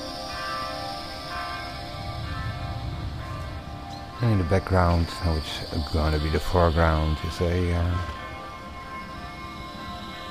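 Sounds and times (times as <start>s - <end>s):
clock tower bells ringing: 0.0s - 10.2s
low outdoor rumble in a garden: 1.6s - 6.0s
speech: 4.2s - 8.2s.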